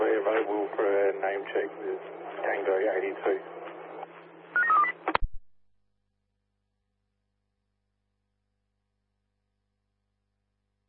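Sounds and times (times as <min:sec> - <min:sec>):
steady telephone line hum: 0:00.0 - 0:05.7
speech: 0:01.4 - 0:03.7
telephone keypad dialing tones: 0:04.6 - 0:05.0.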